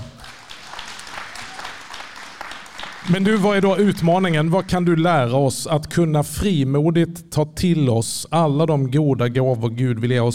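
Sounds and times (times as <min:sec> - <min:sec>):
audience applause in a hall: 0:00.0 - 0:04.7
speech: 0:03.0 - 0:10.3.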